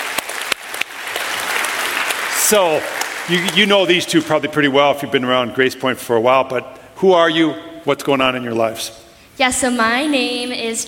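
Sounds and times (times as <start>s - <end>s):
audience applauding: 0.0s - 4.8s
speech: 2.5s - 10.8s.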